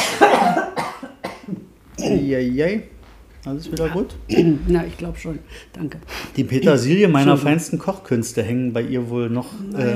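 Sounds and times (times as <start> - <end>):
person coughing harshly: 0.0 - 2.3, 4.3 - 4.6
speech: 2.0 - 9.9.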